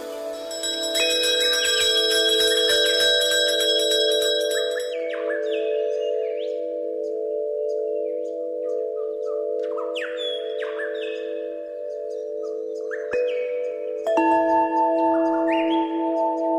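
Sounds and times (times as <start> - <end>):
gentle bell chimes ringing: 0.0 - 16.5.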